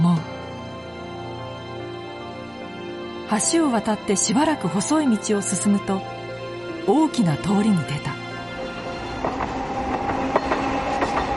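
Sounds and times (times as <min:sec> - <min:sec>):
speech: 0:03.3 - 0:06.2, 0:06.9 - 0:08.2
small two-car streetcar wheels clattering around a curve: 0:08.6 - 0:11.3.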